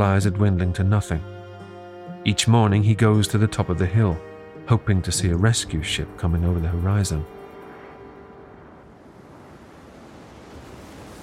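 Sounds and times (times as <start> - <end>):
speech: 0.0 - 1.4, 2.2 - 7.4
gusting wind: 5.2 - 11.2
rough surf on a stormy ocean churning: 6.2 - 11.2.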